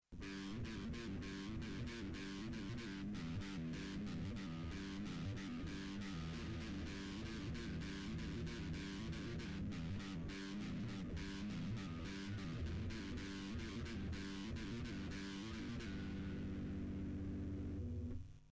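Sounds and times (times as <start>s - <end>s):
guitar playing a scale: 0.2s - 18.2s.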